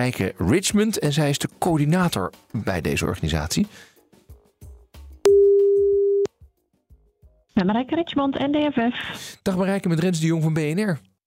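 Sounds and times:
speech: 0.0s - 3.9s, 7.6s - 11.1s
telephone ringback tone while a call is placed: 5.3s - 6.3s.

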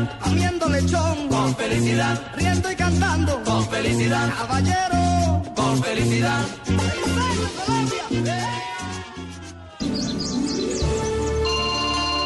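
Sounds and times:
speech: 0.0s - 9.0s
festive music passage with steady bass chords: 0.0s - 12.2s
mobile phone ringtone for an incoming call, bright chirpy electronic melody: 11.4s - 12.2s.

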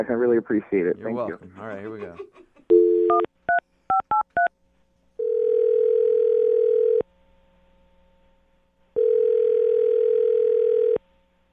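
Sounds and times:
speech: 0.0s - 2.5s
laughter: 1.2s - 2.7s
long steady phone ringback tones: 2.7s - 3.3s, 5.2s - 7.0s, 9.0s - 11.0s.

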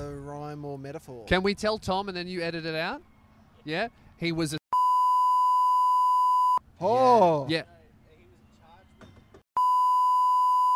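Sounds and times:
speech: 0.6s - 4.6s, 6.8s - 7.7s
high-pitched censor bleep: 4.7s - 6.6s, 9.6s - 10.7s.

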